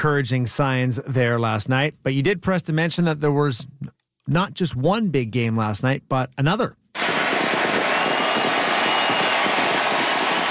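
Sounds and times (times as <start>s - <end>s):
speech: 0.0s - 6.8s
football stadium crowd in Buenos Aires roaring and clapping: 7.0s - 10.4s.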